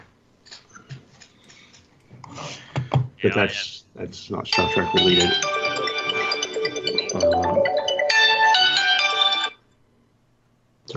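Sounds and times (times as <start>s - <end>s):
speech: 3.2s - 5.6s
mobile phone ringtone for an incoming call: 4.6s - 9.6s.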